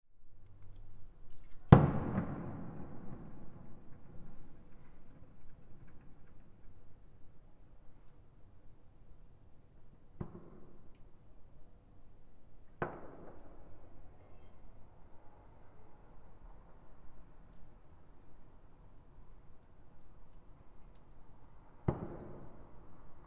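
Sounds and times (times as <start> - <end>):
fireworks at Fukushima University: 1.3 - 7.5, 10.2 - 11.2, 12.8 - 15.4, 19.8 - 23.2.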